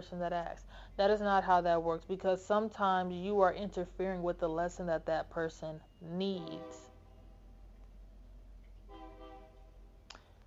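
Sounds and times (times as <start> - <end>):
speech: 0.0 - 6.9
harmonic train horn blast: 6.4 - 7.1, 8.9 - 9.7.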